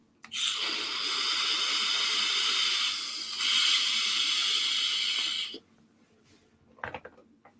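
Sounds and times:
electronic vape firing hiss during a draw: 0.3 - 5.6.

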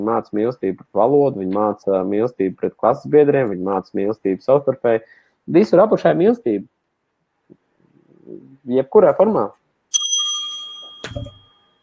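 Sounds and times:
speech: 0.0 - 6.7, 8.3 - 9.6
small bell ringing with a bright sustained tone: 9.9 - 11.8.

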